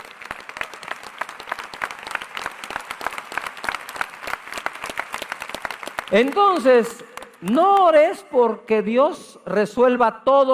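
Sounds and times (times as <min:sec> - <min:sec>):
crowd applauding: 0:00.0 - 0:08.0
speech: 0:06.1 - 0:10.5.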